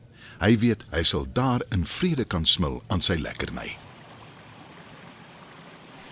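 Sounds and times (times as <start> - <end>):
speech: 0.4 - 3.9
river water flowing: 3.4 - 6.1.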